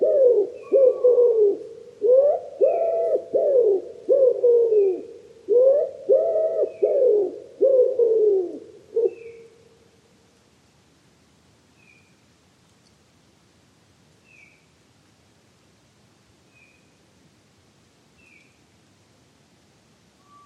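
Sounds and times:
common wood pigeon cooing: 0.0s - 9.6s.

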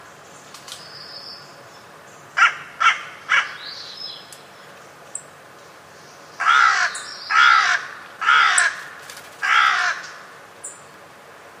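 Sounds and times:
bird cawing raspily: 2.4s - 3.8s, 6.4s - 10.4s.

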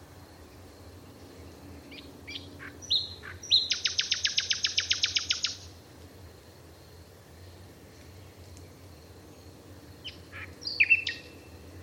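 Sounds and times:
bird calls: 1.8s - 5.7s, 10.0s - 11.5s.

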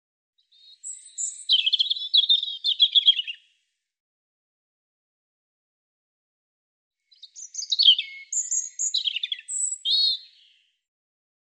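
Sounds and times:
European robin singing: 0.4s - 3.5s, 7.1s - 10.7s.

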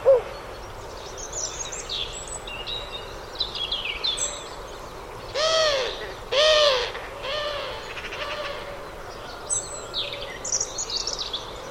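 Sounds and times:
steady background hiss: 0.0s - 11.6s
harsh hooting bird calls: 5.3s - 10.6s.

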